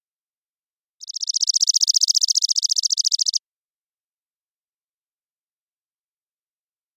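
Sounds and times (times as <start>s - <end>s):
Chipping sparrow (Spizella passerina) trilling song: 1.0s - 3.4s.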